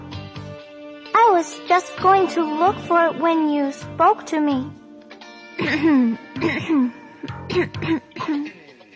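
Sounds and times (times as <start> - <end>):
speech: 1.2 - 4.8, 5.6 - 8.6
throat clearing: 5.6 - 8.6
forced coughing: 5.6 - 8.7.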